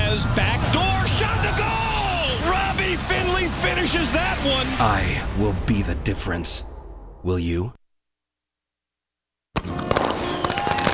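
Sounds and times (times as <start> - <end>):
fireworks crackling and popping: 0.3 - 4.8, 9.6 - 10.9
speech: 4.6 - 7.8.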